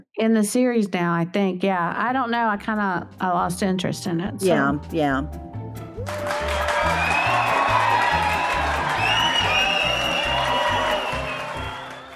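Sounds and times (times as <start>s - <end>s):
speech: 0.1s - 5.5s, 6.1s - 6.6s
large crowd cheering: 6.0s - 12.1s
whistles and whoops from crowd: 6.0s - 12.1s
dense clapping of a large crowd: 6.1s - 12.1s.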